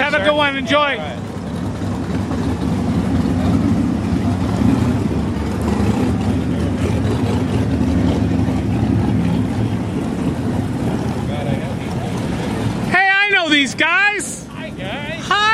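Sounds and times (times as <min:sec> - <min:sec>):
classic car engine rumbling: 0:00.0 - 0:15.5
speech: 0:00.2 - 0:01.3.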